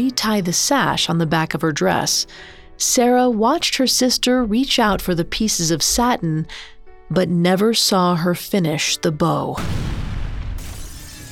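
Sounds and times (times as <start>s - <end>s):
speech: 0.0s - 10.0s
loud deep explosion: 9.6s - 11.3s.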